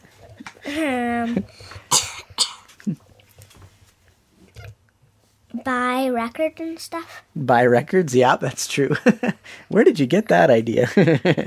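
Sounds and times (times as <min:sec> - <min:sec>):
speech: 0:00.7 - 0:02.0, 0:05.7 - 0:11.4
child coughing: 0:01.9 - 0:02.8.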